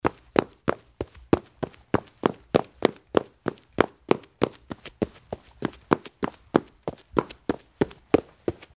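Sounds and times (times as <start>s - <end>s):
footsteps in waraji straw sandals: 0.0s - 8.7s.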